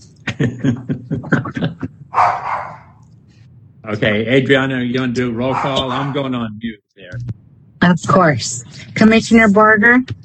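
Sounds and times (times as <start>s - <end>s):
laughter: 0.2s - 2.0s
speech: 0.4s - 1.6s, 3.8s - 10.2s
dog barking during a remote commission meeting: 2.1s - 3.0s, 5.4s - 6.2s.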